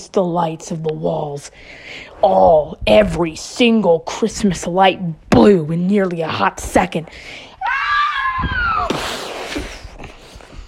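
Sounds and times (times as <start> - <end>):
speech: 0.0 - 7.5, 8.4 - 8.6
person screaming in terror: 7.6 - 9.0
rough cries and commotion: 7.6 - 9.4.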